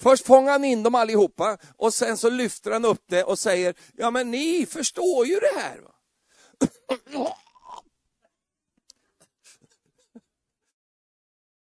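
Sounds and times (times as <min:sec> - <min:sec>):
speech: 0:00.0 - 0:05.9, 0:06.6 - 0:07.4
loud throaty gulping: 0:06.6 - 0:07.9
person chewing and swallowing: 0:07.1 - 0:07.8.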